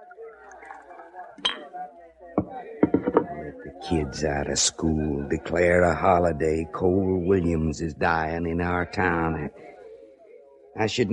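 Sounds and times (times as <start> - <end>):
indistinct voices murmuring: 0.0 - 10.1, 10.8 - 11.1
rye whiskey pouring into a glass at a dresser: 0.3 - 1.6
speech: 1.4 - 9.7, 10.8 - 11.1
glass clinks: 1.5 - 1.7, 2.8 - 3.3.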